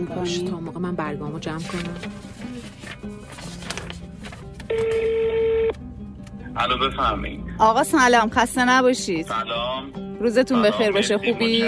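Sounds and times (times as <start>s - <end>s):
speech: 0.0s - 2.7s, 6.6s - 11.6s
telephone dialing clicks and short tones: 4.7s - 5.8s.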